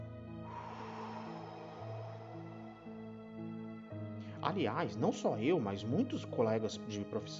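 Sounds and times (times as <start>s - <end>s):
long deep yoga breath in and out: 0.0s - 4.4s
steady soft music: 0.0s - 7.3s
speech: 4.4s - 7.3s.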